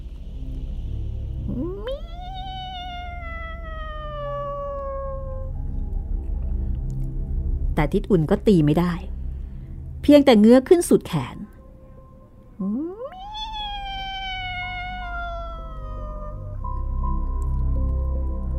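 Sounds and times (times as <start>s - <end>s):
low steady rumble: 0.0s - 18.5s
cat yowling in the dark: 1.5s - 5.6s, 12.8s - 16.7s
speech: 7.8s - 9.1s, 10.1s - 11.4s.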